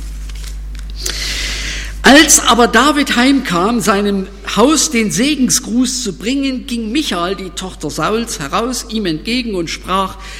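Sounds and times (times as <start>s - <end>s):
thin paper pages of a Bible rustling and flipping: 0.0s - 0.9s
speech: 2.0s - 10.3s.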